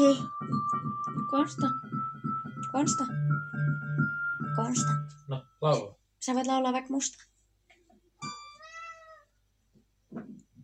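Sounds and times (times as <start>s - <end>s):
speech: 0.0s - 2.0s, 2.7s - 7.3s
cat meowing: 8.4s - 9.4s.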